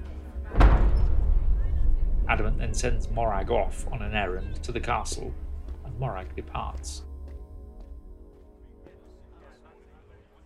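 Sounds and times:
heavy castle gate slamming shut: 0:00.4 - 0:05.9
speech: 0:02.3 - 0:07.1.

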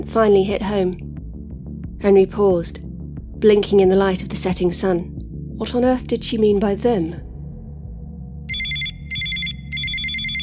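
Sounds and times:
speech: 0:00.0 - 0:01.1, 0:02.0 - 0:02.8, 0:03.4 - 0:07.3
low steady music: 0:00.0 - 0:10.4
telephone ringing with bright trilling electronic tones: 0:08.5 - 0:10.4.

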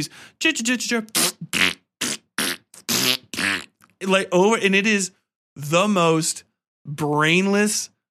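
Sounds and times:
speech: 0:00.0 - 0:01.8, 0:04.0 - 0:08.0
voice blowing wet sputtering fart noises: 0:01.1 - 0:03.8.

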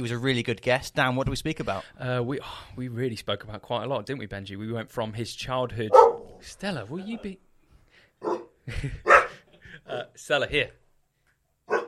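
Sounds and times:
speech: 0:00.0 - 0:07.5, 0:08.2 - 0:09.2, 0:09.8 - 0:10.8
dog barking in a studio: 0:05.9 - 0:06.4, 0:08.2 - 0:09.4, 0:11.7 - 0:11.8.

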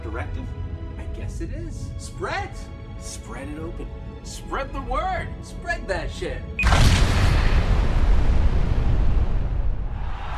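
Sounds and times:
speech: 0:00.2 - 0:00.6, 0:01.2 - 0:07.3
loud explosion: 0:06.6 - 0:10.3
heavy sustained low rumble: 0:06.7 - 0:10.3.

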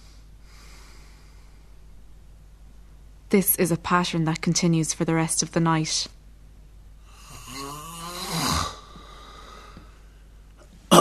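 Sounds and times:
sleeper breathing during the night: 0:00.0 - 0:01.8, 0:08.8 - 0:10.4
steady low hum: 0:00.0 - 0:10.9
speech: 0:03.3 - 0:06.2
sleeper's rough snorting gasp resuming breathing: 0:07.2 - 0:09.8.

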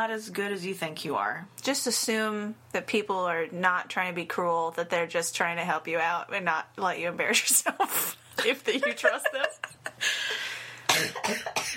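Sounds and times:
speech: 0:00.0 - 0:10.5, 0:11.3 - 0:11.7
person coughing: 0:10.9 - 0:11.7.

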